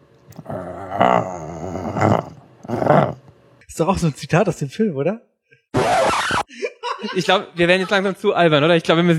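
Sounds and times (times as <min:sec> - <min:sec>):
person growling like a dog: 0:00.3 - 0:03.3
speech: 0:03.8 - 0:05.3, 0:06.3 - 0:09.1
laughter: 0:06.5 - 0:08.4.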